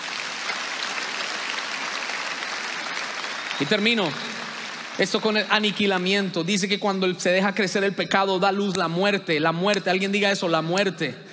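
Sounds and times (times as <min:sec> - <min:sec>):
congregation applauding: 0:00.0 - 0:06.6
speech: 0:03.6 - 0:04.4, 0:05.0 - 0:11.3.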